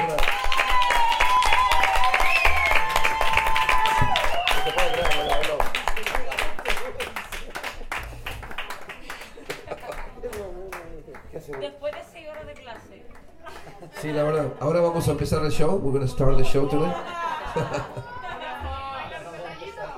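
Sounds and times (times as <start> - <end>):
excited cheers: 0.0 - 5.6
crowd clapping: 0.0 - 14.2
whistles: 1.0 - 2.8, 3.9 - 5.6
laughter: 6.6 - 11.2, 13.4 - 15.3, 16.6 - 19.8
speech: 15.1 - 18.1.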